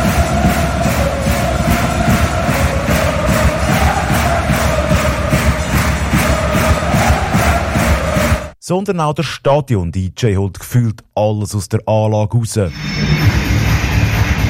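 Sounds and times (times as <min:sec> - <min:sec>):
crowd of spectators roaring at Ice Hockey World Championship match in Zürich stadium: 0:00.0 - 0:08.6
speech: 0:08.7 - 0:13.5.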